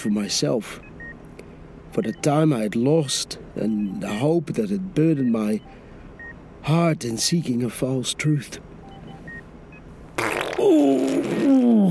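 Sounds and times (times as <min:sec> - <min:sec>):
speech: 0:00.0 - 0:00.9, 0:02.0 - 0:05.8, 0:06.6 - 0:08.7, 0:10.6 - 0:11.8
fart: 0:10.1 - 0:11.8.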